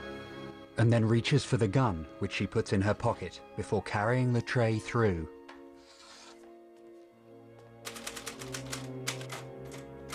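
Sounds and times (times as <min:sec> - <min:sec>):
speech: 0:00.8 - 0:05.4
typewriter keystrokes: 0:07.8 - 0:10.1.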